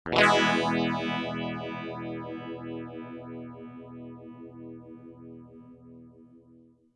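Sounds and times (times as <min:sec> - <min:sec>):
strum through four-stage effect at full depth and regeneration: 0:00.1 - 0:04.6.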